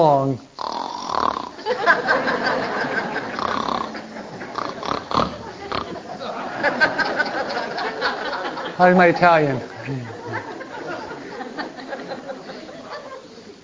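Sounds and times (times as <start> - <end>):
speech: 0.0 - 0.7, 8.8 - 10.2
man's voice imitating a husband snoring: 0.6 - 1.6, 3.3 - 6.0
laughter: 1.6 - 13.6.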